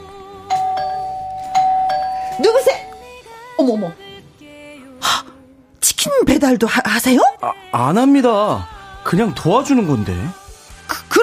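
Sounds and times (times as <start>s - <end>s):
doorbell chiming ding-dong with a sustained ringing tone: 0.5s - 3.0s
speech: 2.4s - 2.9s, 3.6s - 4.0s, 6.1s - 10.4s.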